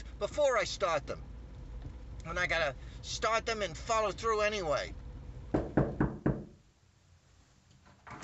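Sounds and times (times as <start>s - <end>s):
speech: 0.2s - 1.3s, 2.3s - 5.0s
quick sharp knocks on a door: 5.5s - 6.6s.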